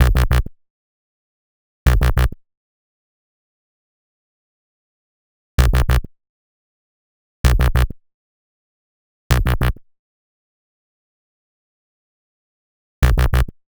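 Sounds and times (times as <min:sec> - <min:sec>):
bass in B minor: 0:00.0 - 0:00.5, 0:01.9 - 0:02.4, 0:05.6 - 0:06.1, 0:07.4 - 0:08.0, 0:09.3 - 0:09.8, 0:13.0 - 0:13.6.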